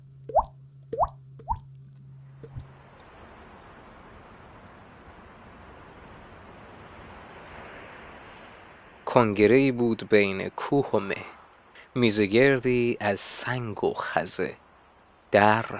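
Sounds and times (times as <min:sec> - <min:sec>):
water drops plopping: 0:00.3 - 0:01.7
speech: 0:09.2 - 0:14.6, 0:15.3 - 0:15.7.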